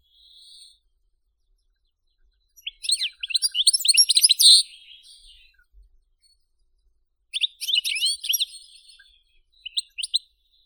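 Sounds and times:
European goldfinch song of bright twittering and tinkling notes with liquid trills: 0:02.1 - 0:05.6, 0:07.4 - 0:10.6.

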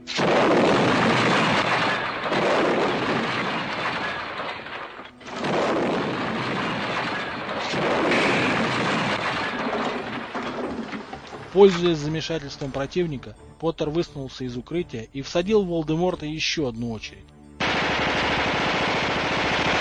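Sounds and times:
continuous barrage of explosions: 0:00.0 - 0:12.8, 0:17.6 - 0:19.8
speech: 0:11.6 - 0:17.4.

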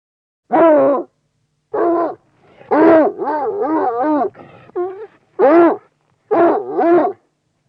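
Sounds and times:
bloodhound baying and howling: 0:01.8 - 0:07.2.

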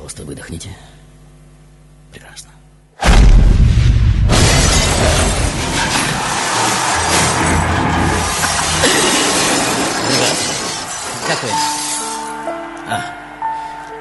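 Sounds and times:
speech: 0:00.2 - 0:01.0, 0:02.1 - 0:02.6
deep heavy thud of a man hitting a glass wall: 0:03.0 - 0:05.7
large glass office wall shattering: 0:04.3 - 0:12.4
broken glass shards raining and clattering down: 0:04.4 - 0:12.4.

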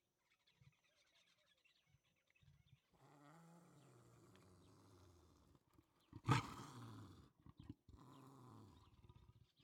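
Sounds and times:
leopard growling: 0:02.9 - 0:09.5.

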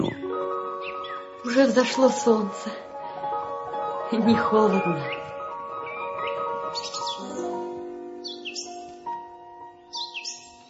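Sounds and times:
starlings chirping and whistling after sunrise: 0:00.0 - 0:01.8, 0:04.4 - 0:09.0, 0:09.8 - 0:10.6
speech: 0:01.4 - 0:02.9, 0:04.1 - 0:05.2.

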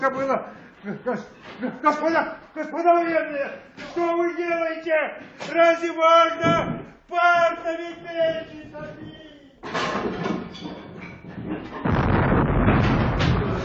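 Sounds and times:
speech: 0:00.0 - 0:10.9
artillery shells exploding nearby: 0:11.7 - 0:13.6.

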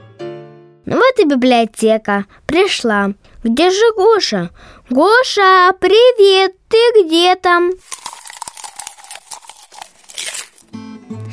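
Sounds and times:
speech: 0:00.9 - 0:08.0
bookworm chewing on paper in a library: 0:07.8 - 0:10.7.

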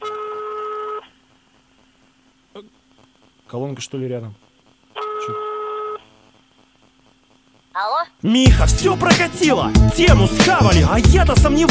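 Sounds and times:
telephone dialing tones: 0:00.0 - 0:01.1, 0:05.0 - 0:06.0
speech: 0:03.5 - 0:04.5, 0:07.8 - 0:11.7.

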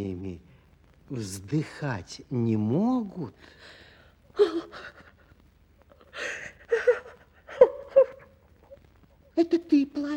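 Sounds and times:
speech: 0:01.1 - 0:03.8, 0:04.4 - 0:05.0, 0:09.4 - 0:10.1
quiet breathy sobbing: 0:04.3 - 0:09.4.

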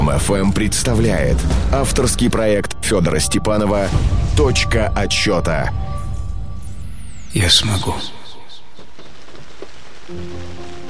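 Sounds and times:
speech: 0:00.1 - 0:05.9, 0:07.4 - 0:08.2, 0:10.1 - 0:10.7
raindrops drumming on the rusty roof of a house in Liberia in the rainy season: 0:08.8 - 0:10.8.

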